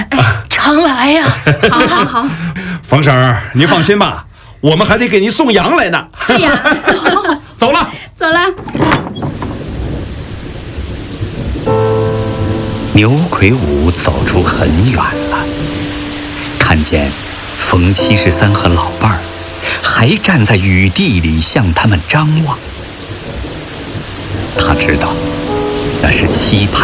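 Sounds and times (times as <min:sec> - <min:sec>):
steady rain falling: 0:00.0 - 0:26.8
speech: 0:00.7 - 0:09.4, 0:12.9 - 0:15.5, 0:16.7 - 0:22.7, 0:24.6 - 0:25.4, 0:26.0 - 0:26.8
laughter: 0:01.2 - 0:02.5, 0:06.3 - 0:07.4
low rumbles: 0:08.4 - 0:26.8
tonal music-like passages: 0:11.7 - 0:20.6, 0:24.5 - 0:26.8.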